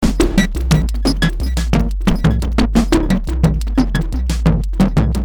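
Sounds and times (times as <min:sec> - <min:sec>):
Spectralis synthesizer sequence with envelopes: 0:00.0 - 0:05.1.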